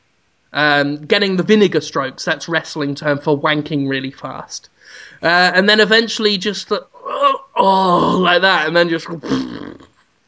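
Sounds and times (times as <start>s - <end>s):
speech: 0.5s - 9.8s
voice making a buzzy raspberry imitating a fart: 7.0s - 8.4s, 9.0s - 10.0s.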